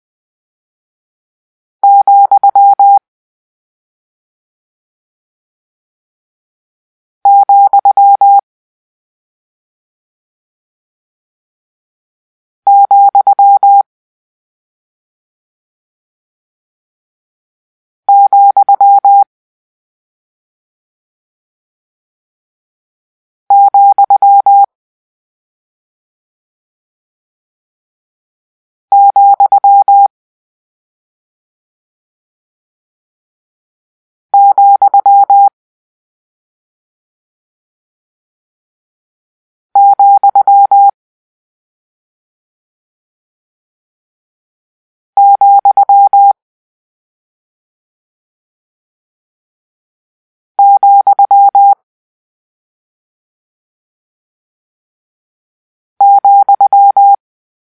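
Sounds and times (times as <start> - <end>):
morse code tones for a comma: 1.8 - 3.0, 7.3 - 8.4, 12.7 - 13.8, 18.1 - 19.2, 23.5 - 24.7, 28.9 - 30.1, 34.4 - 35.5, 39.8 - 40.9, 45.2 - 46.4, 50.6 - 51.8, 56.0 - 57.2.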